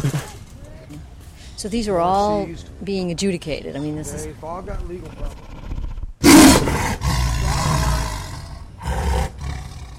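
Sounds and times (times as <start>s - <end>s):
speech: 1.6s - 5.5s
tiger roaring: 5.2s - 9.9s.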